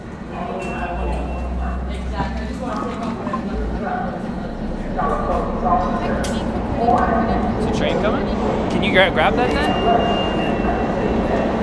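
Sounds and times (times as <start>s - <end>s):
L subway train pulling into the 3rd Avenue station: 0.0s - 11.6s
thin high metallic whine of subway train: 0.0s - 11.6s
speech: 9.0s - 10.3s.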